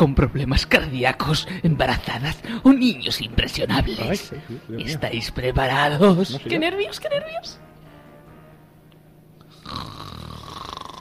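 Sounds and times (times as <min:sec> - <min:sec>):
speech: 0:00.0 - 0:07.7
rough rattling snore in a haunted-house attraction: 0:09.5 - 0:11.0.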